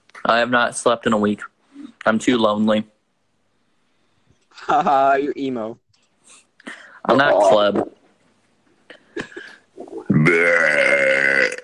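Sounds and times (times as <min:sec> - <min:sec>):
speech: 0:00.3 - 0:02.9, 0:04.6 - 0:08.0, 0:10.2 - 0:11.2
long loud burp with buzzing tone: 0:10.0 - 0:11.6.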